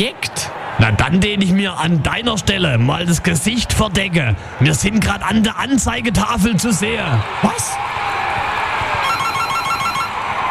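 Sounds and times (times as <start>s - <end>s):
speech: 0.0s - 8.0s
steady noise: 0.0s - 10.5s
phone ringing with an electronic ringtone: 9.0s - 10.2s.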